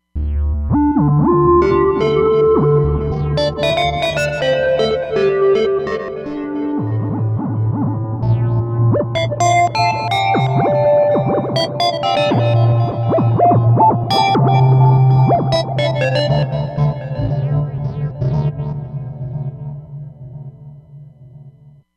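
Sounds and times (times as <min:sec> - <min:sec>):
synthesizer: 0:00.4 - 0:20.5.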